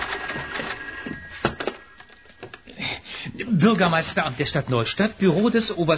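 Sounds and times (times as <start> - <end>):
telephone bell ringing with a metallic trill: 0.0 - 3.9
speech: 3.4 - 5.9.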